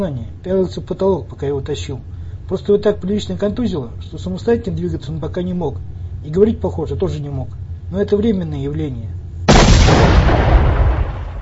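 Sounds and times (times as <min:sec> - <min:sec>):
speech: 0:00.0 - 0:09.2
explosion booming during fighting: 0:09.5 - 0:11.4.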